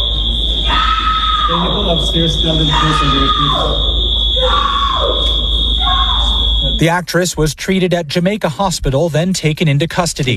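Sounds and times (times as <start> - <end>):
constant high-pitched electronic tone: 0.0 - 7.5
steady noise: 0.0 - 10.3
woman screaming while being removed from a plane: 0.6 - 1.6, 2.7 - 6.4
speech: 1.5 - 5.5, 6.7 - 10.3.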